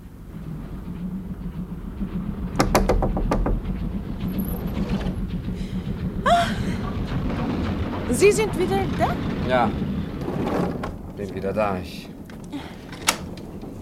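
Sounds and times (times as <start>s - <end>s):
low rumble of a moving passenger train: 0.0s - 13.8s
knocking on a compartment door inside a passenger train car: 2.6s - 3.8s
speech: 8.2s - 10.5s, 11.2s - 12.1s.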